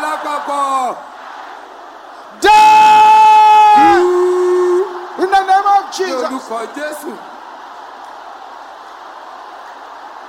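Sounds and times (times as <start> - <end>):
large crowd of worshippers at a prayer service shouting and roaring together: 0.0 - 10.2
speech: 6.3 - 7.3.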